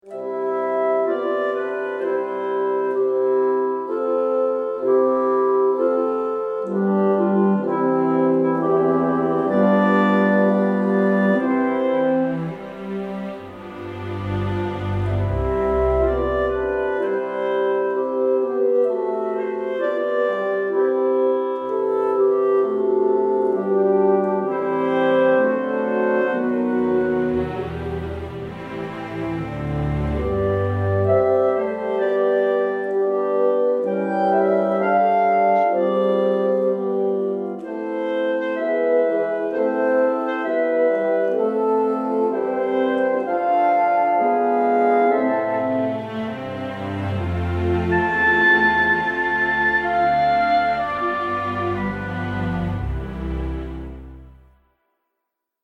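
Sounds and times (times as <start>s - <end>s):
wind instruments playing legato: 0.0s - 54.5s.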